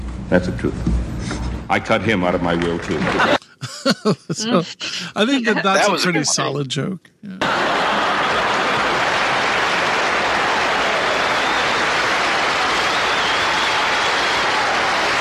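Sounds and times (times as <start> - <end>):
speech: 0.3 - 7.6
audience applause: 2.3 - 3.4, 7.4 - 15.1
laughter: 2.8 - 6.5, 7.4 - 11.1.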